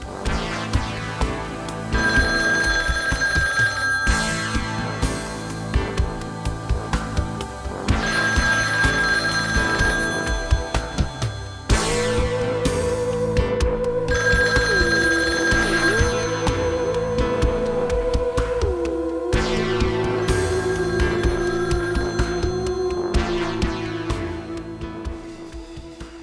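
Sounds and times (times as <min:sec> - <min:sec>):
busy rhythmic music: 0:00.0 - 0:26.2
telephone bell ringing: 0:01.9 - 0:06.4, 0:07.8 - 0:11.8, 0:14.1 - 0:18.0, 0:20.2 - 0:24.6.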